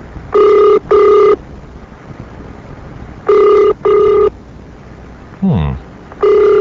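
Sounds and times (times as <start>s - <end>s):
low hissing telephone connection: 0.0s - 6.6s
telephone ringback tone heard down the line: 0.3s - 1.4s, 3.2s - 4.4s, 6.2s - 6.6s.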